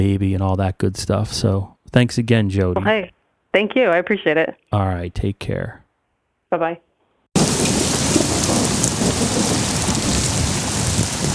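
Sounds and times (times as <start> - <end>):
speech: 0.0 - 5.8, 6.5 - 6.8
deep rumbles of thunder: 7.4 - 11.3
heavy torrential rain pouring down: 7.4 - 11.3.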